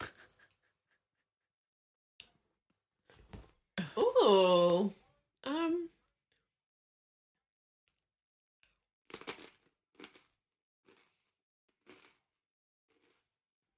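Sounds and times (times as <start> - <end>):
speech: 4.3 - 5.0
chips crunched while eating: 9.1 - 13.4.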